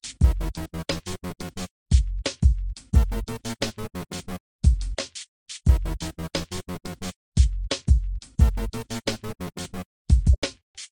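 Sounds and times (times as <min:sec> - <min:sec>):
boombox music: 0:00.2 - 0:02.1, 0:03.0 - 0:04.9, 0:05.7 - 0:10.4.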